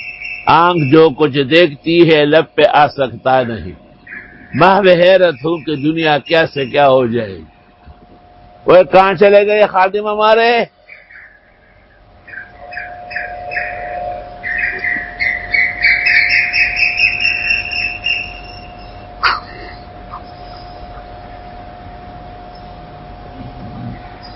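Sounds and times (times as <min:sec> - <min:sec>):
Asian koel calling: 0:00.0 - 0:09.4, 0:10.0 - 0:24.3
steady low hum: 0:00.0 - 0:24.3
speech: 0:00.5 - 0:03.8, 0:04.5 - 0:07.5, 0:08.6 - 0:10.8.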